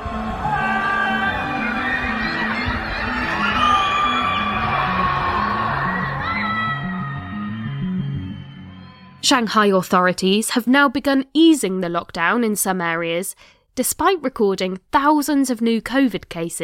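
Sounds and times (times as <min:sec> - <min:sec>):
people screaming and shouting from apartment windows: 0:00.0 - 0:09.2
speech: 0:09.3 - 0:16.6.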